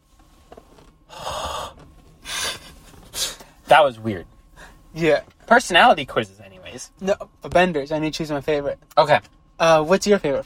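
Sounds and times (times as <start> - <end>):
voice imitating breathing with breathy gasps: 1.1 - 2.4
speech: 3.7 - 4.3, 5.0 - 10.4.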